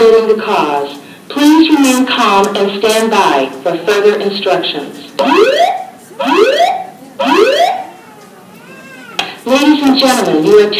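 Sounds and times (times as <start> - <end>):
speech: 0.3 - 7.8, 9.4 - 10.7
building alarm sounding in rising whoops: 5.2 - 7.9.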